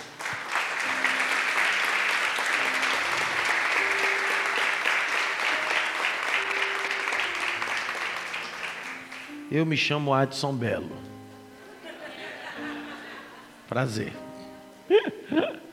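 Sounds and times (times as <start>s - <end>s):
audience applause: 0.0s - 9.4s
speech: 9.5s - 11.1s, 13.7s - 14.2s
laughter: 11.7s - 13.6s, 14.9s - 15.7s.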